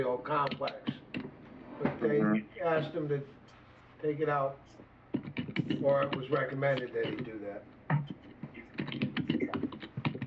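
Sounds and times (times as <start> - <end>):
speech: 0.0 - 1.0, 1.8 - 3.4, 4.0 - 8.2
typing on a computer keyboard: 5.1 - 7.3, 7.9 - 10.2.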